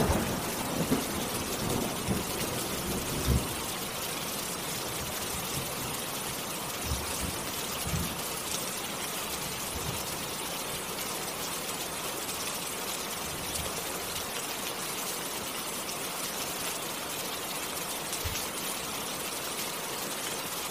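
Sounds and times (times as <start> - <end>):
rain falling in a steady dense hiss: 0.0 - 20.6
low thumps and knocks: 6.8 - 8.2.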